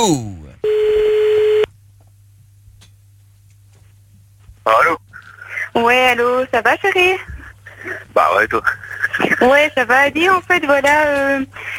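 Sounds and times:
speech: 0.0s - 0.4s, 4.7s - 5.0s, 5.8s - 7.3s, 8.3s - 11.7s
electronic telephone ring tone of a call being dialed out: 0.6s - 1.7s.

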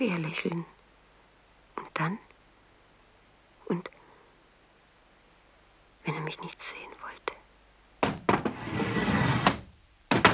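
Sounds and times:
speech: 0.0s - 0.8s, 2.0s - 2.3s, 3.7s - 4.0s, 6.1s - 7.4s
door bolts sliding open: 8.0s - 10.3s
knocks: 8.0s - 10.3s.

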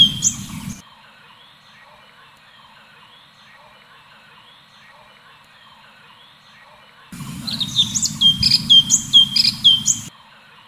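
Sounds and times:
constant low humming noise: 0.0s - 0.8s, 7.2s - 10.1s
Leafbird song with bright whistled notes and high chirps: 0.0s - 10.6s.

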